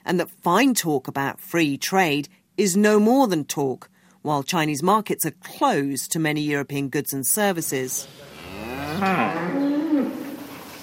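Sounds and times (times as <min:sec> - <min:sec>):
faint barnyard background: 0:00.0 - 0:10.8
speech: 0:00.1 - 0:08.3, 0:09.0 - 0:10.2
dairy cows mooing on a farm: 0:08.3 - 0:10.6.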